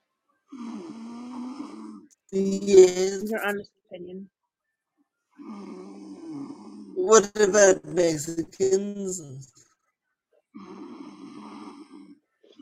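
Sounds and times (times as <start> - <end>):
loud snoring: 0.5 - 3.2, 5.4 - 8.2, 10.6 - 12.2
speech: 2.3 - 4.4, 7.0 - 9.6.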